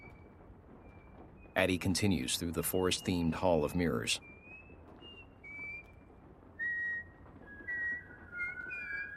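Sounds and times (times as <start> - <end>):
speech: 1.6 - 4.3
girl whistling a slow tune: 6.6 - 9.1.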